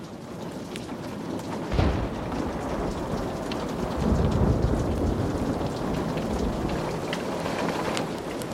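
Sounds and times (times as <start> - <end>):
heavy rain pattering against castle walls: 0.0 - 8.5
sharp crack of thunder: 1.6 - 8.2.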